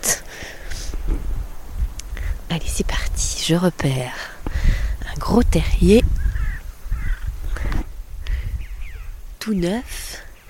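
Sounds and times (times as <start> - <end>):
steady low rumble of wind or outdoor noise: 0.0 - 10.4
speech: 2.6 - 4.3, 5.2 - 6.2, 9.5 - 10.0
crows cawing: 6.2 - 7.9.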